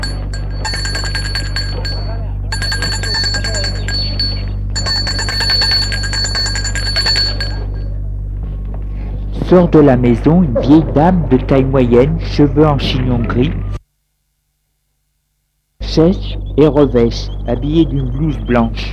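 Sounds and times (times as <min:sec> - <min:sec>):
bell rung at the gate of an old house: 0:00.0 - 0:08.0
steady low hum: 0:00.0 - 0:18.9
speech: 0:09.5 - 0:13.7, 0:16.0 - 0:18.9.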